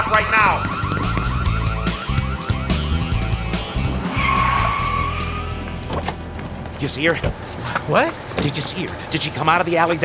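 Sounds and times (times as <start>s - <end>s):
high whine: 0.0s - 6.8s
car engine roaring as it pulls away: 0.0s - 9.4s
car tires screeching: 0.0s - 10.0s
speech: 6.8s - 10.0s.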